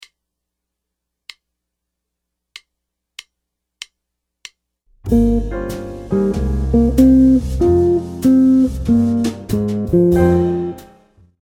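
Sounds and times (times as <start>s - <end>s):
jazz guitar playing ii V I licks: 5.1s - 11.0s.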